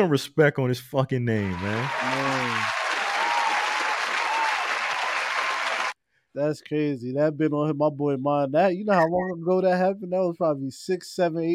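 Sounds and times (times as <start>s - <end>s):
speech: 0.0s - 2.8s, 6.4s - 11.5s
crowd applauding: 1.4s - 6.0s.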